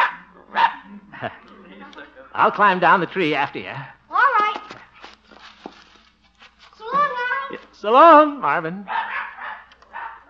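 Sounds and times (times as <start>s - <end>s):
puppy barking: 0.0s - 0.9s, 8.9s - 10.2s
speech: 1.2s - 1.5s, 2.4s - 4.0s, 7.8s - 9.0s.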